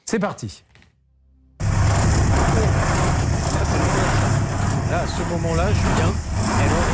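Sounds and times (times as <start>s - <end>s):
speech: 0.1s - 0.7s, 4.9s - 6.8s
ship engine room drone heard from cabin: 1.5s - 6.9s.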